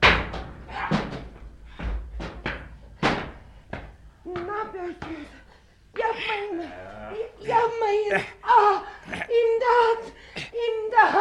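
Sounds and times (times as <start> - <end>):
door being broken down: 0.0 - 3.5
rattling between blows on a door: 0.0 - 5.1
speech: 4.3 - 5.4, 6.0 - 10.2.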